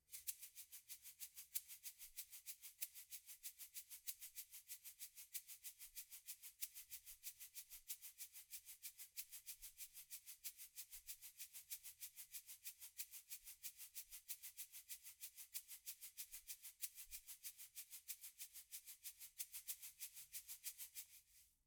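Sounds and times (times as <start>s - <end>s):
shaker at 94 bpm: 0.0s - 21.6s.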